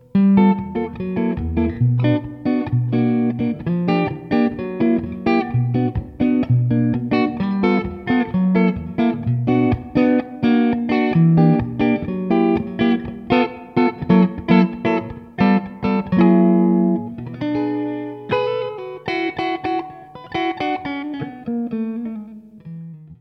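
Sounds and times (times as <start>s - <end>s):
rock jazz guitar with compressor: 0.0s - 23.1s.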